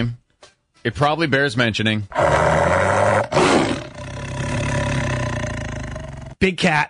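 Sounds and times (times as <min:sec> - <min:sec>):
speech: 0:00.0 - 0:00.2, 0:00.8 - 0:02.8, 0:06.4 - 0:06.8
big cat roar sound effect: 0:02.1 - 0:06.4.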